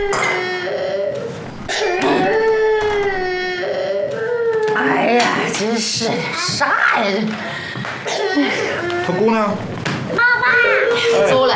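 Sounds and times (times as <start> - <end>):
young child crying in wailing sobs: 0.0 - 5.4, 10.2 - 11.5
speech: 5.6 - 9.8, 11.0 - 11.5.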